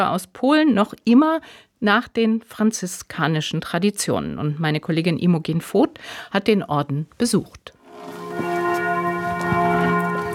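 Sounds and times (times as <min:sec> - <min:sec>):
speech: 0:00.0 - 0:08.2
castle and pilgrimage church bells ringing at noon: 0:07.8 - 0:10.3.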